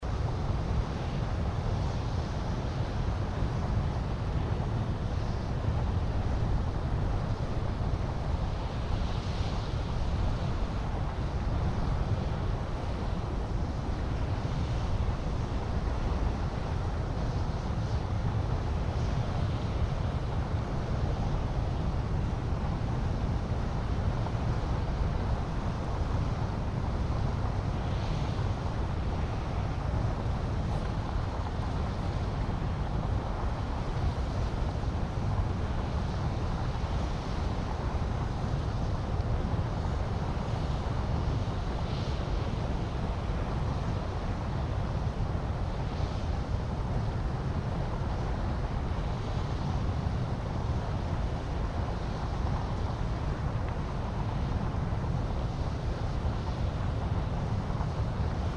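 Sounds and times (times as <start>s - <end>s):
Hurricane Vent at Porcelain Basin in Norris Geyser Basin: 0.1s - 58.5s.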